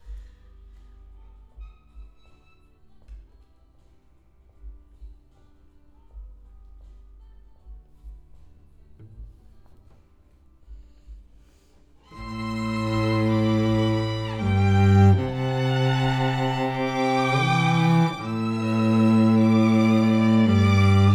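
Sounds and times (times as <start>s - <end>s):
cello: 12.1s - 21.1s.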